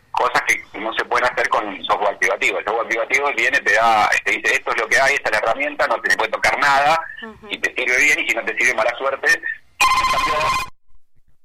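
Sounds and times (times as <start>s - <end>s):
speech: 0.2s - 10.7s
telephone ringing: 9.8s - 10.7s.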